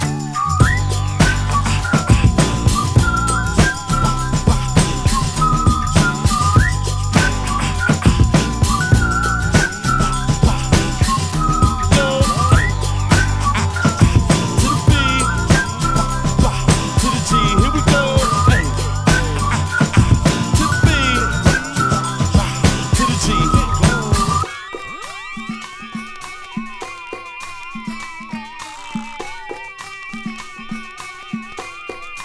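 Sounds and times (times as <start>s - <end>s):
person whistling a bouncy repeating melody: 0.0s - 26.3s
full musical beat with deep bass and light chiming accents: 0.0s - 32.2s.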